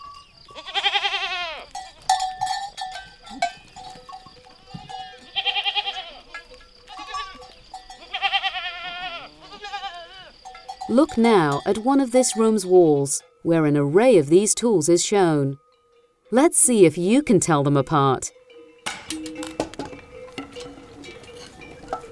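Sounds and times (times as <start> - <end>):
shepherds' livestock bells clinking and ringing amid a flock: 0.0 - 0.7, 1.7 - 8.4, 10.4 - 16.8, 18.0 - 22.1
goats bleating loudly: 0.5 - 1.7, 5.1 - 7.4, 8.0 - 10.4
speech: 10.9 - 15.6, 16.3 - 18.4.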